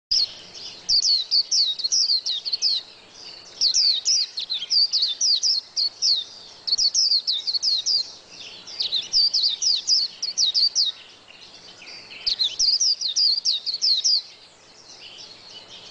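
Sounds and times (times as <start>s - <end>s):
white-eye singing in quick high-pitched twittering phrases: 0.1s - 15.8s.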